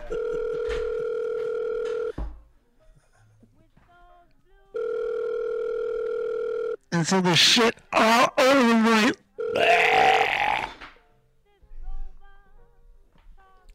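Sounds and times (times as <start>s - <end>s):
telephone dial tone: 0.0s - 2.2s, 4.8s - 6.8s
speech: 7.0s - 9.8s.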